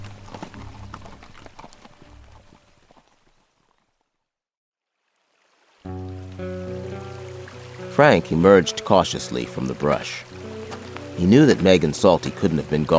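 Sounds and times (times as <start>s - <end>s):
hooves clattering through creek water: 0.0s - 3.4s, 6.8s - 12.9s
horses splashing across a creek: 0.0s - 4.0s, 5.2s - 12.9s
sustained music: 5.9s - 12.9s
speech: 8.0s - 10.3s, 11.2s - 12.9s.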